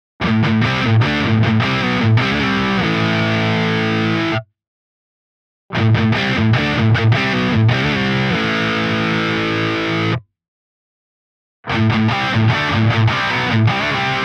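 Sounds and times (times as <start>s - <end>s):
crunchy electric guitar through humbucker pickup: 0.2s - 4.5s, 5.7s - 10.2s, 11.7s - 14.2s.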